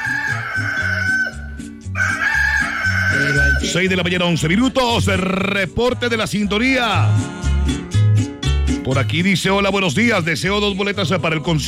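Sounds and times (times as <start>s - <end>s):
rooster crowing: 0.0s - 3.8s
bouncy musical backing with a stepping bass line: 0.0s - 11.6s
speech: 3.6s - 8.0s, 8.8s - 11.6s.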